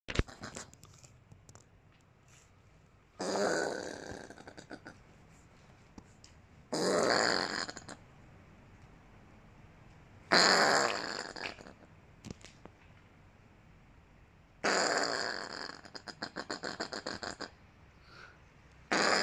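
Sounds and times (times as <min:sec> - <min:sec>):
opossum: 0:00.1 - 0:01.7, 0:03.2 - 0:08.0, 0:10.3 - 0:12.7, 0:14.6 - 0:17.6, 0:18.2 - 0:19.2.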